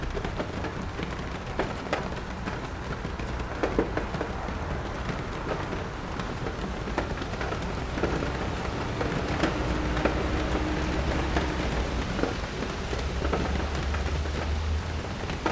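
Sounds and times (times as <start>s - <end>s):
rain pattering on a bookstore window: 0.0s - 15.5s
low rumble: 7.6s - 14.4s.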